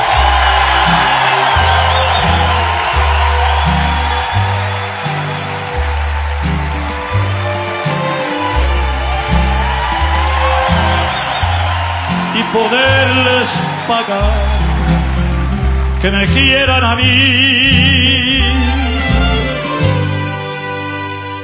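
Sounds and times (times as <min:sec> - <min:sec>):
whoops and shouts from a live crowd: 0:00.0 - 0:15.5
live crowd cheering and applauding: 0:00.0 - 0:21.4
pulsing bass-heavy music: 0:00.0 - 0:21.4
speech: 0:16.0 - 0:18.4.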